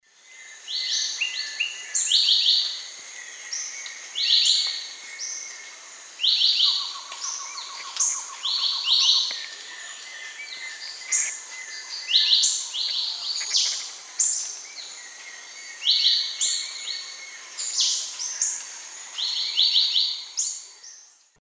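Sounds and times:
Euphonia xanthogaster song in the Eastern Lowlands of South America: 0:00.0 - 0:21.4.

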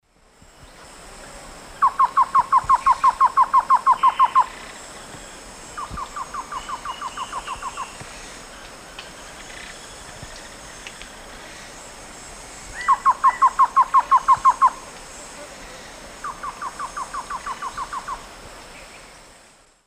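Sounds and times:
Thamnophilus praecox duet in eastern lowlands of South America: 0:01.8 - 0:08.3, 0:12.8 - 0:14.8, 0:16.2 - 0:19.1.

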